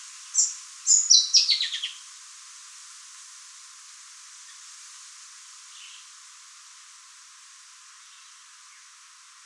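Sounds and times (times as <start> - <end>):
mouse-colored sunbird calling: 0.3 - 2.0.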